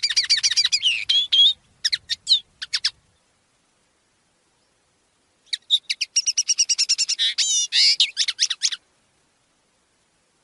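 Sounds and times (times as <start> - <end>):
common linnet song: 0.0 - 3.3, 5.4 - 8.8.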